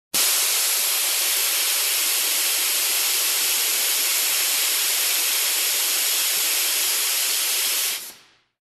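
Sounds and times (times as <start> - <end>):
air pressure noise: 0.1 - 8.6.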